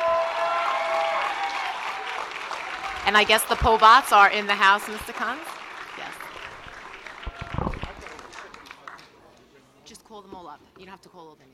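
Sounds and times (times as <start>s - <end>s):
audience applause: 0.0s - 9.2s
speech: 3.1s - 5.6s, 10.4s - 11.5s.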